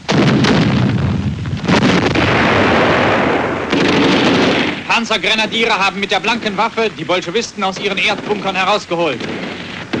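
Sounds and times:
anti-aircraft artillery firing during a tank battle: 0:00.0 - 0:05.7, 0:07.7 - 0:09.9
speech: 0:05.0 - 0:09.6.

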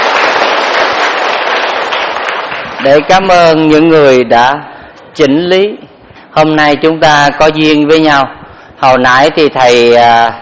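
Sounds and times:
audience applause at a Buddhist dharma talk: 0:00.0 - 0:03.1
speech: 0:02.8 - 0:10.3.

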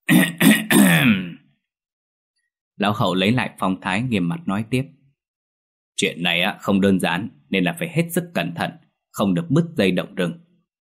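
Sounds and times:
old man clearing his throat: 0:00.0 - 0:01.5
speech: 0:02.8 - 0:05.0, 0:06.0 - 0:10.4.

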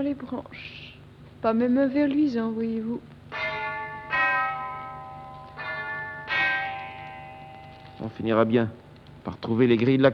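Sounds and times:
speech: 0:00.0 - 0:03.2, 0:08.0 - 0:10.1
church bell striking the hour: 0:03.3 - 0:08.4.

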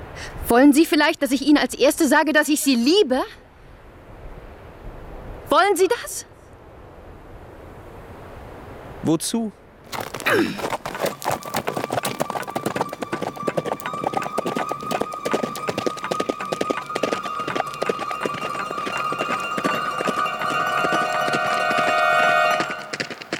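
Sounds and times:
speech: 0:00.2 - 0:03.4, 0:05.5 - 0:06.3, 0:09.0 - 0:10.8
horse galloping along a narrow road: 0:09.9 - 0:23.3.

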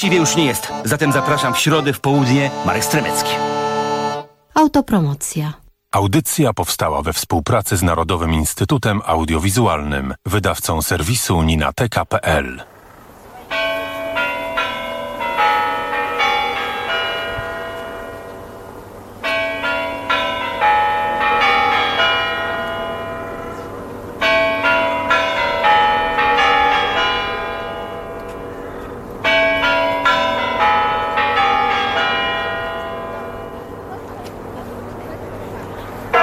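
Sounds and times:
speech: 0:00.0 - 0:03.6, 0:04.6 - 0:12.7
Kremlin clock tower chimes: 0:00.0 - 0:04.0, 0:13.5 - 0:35.0, 0:35.6 - 0:36.2.

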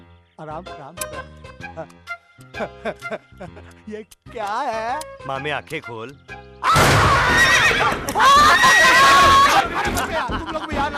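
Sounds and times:
speech: 0:00.4 - 0:10.9
laughter: 0:02.6 - 0:03.9, 0:07.8 - 0:10.9
runaway horse neighing: 0:07.2 - 0:09.5.

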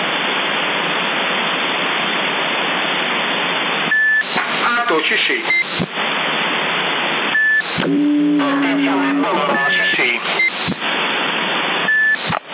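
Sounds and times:
steady loud static hiss on a CB radio: 0:00.0 - 0:12.5
short electronic beeps on a CB radio with muted carrier: 0:03.9 - 0:04.3, 0:07.4 - 0:07.8, 0:08.5 - 0:10.6, 0:11.9 - 0:12.4
speech: 0:05.0 - 0:05.6.

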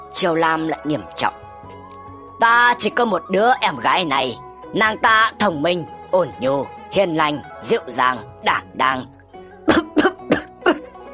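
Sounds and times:
speech: 0:00.1 - 0:01.4, 0:02.4 - 0:09.1
person coughing: 0:09.7 - 0:10.9.

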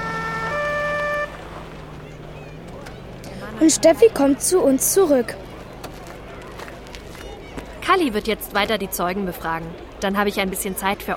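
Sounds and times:
ambulance siren: 0:00.0 - 0:03.2
speech: 0:03.6 - 0:05.4, 0:07.9 - 0:11.1.

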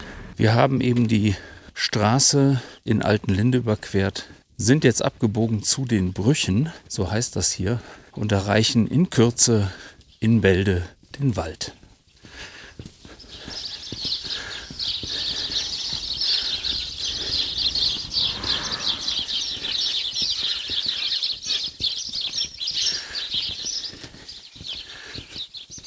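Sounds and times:
speech: 0:00.4 - 0:11.8
flock of sparrows chattering while nesting under the ridge of a house roof: 0:12.3 - 0:25.8.

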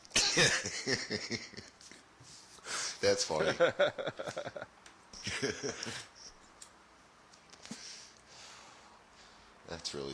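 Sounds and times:
person coughing: 0:00.2 - 0:00.7
speech: 0:00.4 - 0:01.8, 0:03.0 - 0:06.1, 0:09.8 - 0:10.1
laughter: 0:03.3 - 0:06.2.

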